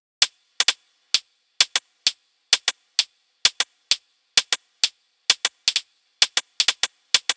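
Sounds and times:
hi-hat drum loop: 0:00.2 - 0:07.3.

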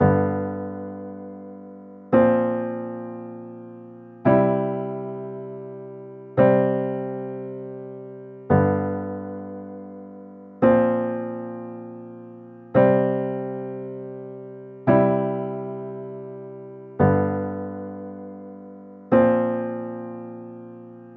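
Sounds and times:
dry piano in C: 0:00.0 - 0:21.1.

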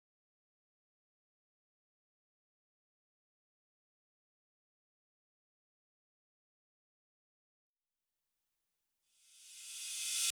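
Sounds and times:
reversed crash cymbal: 0:09.3 - 0:10.2.

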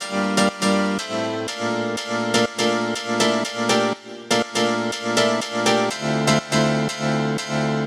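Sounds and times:
piano in G with reverb: 0:00.0 - 0:07.8.

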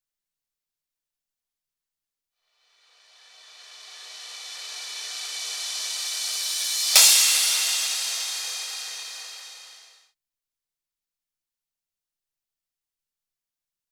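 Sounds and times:
cymbal: 0:02.9 - 0:09.9.

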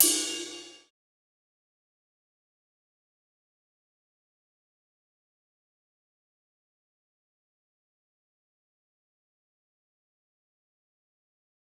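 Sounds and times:
cymbal rise: 0:00.0 - 0:00.9.

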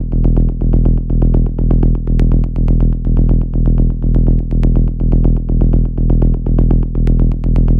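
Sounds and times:
bass loop in E at 123 BPM: 0:00.0 - 0:07.7.

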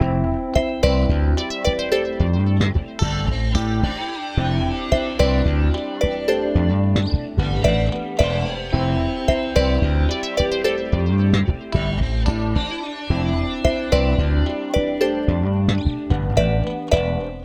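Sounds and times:
melodic stack in C major at 110 BPM: 0:00.0 - 0:17.4.

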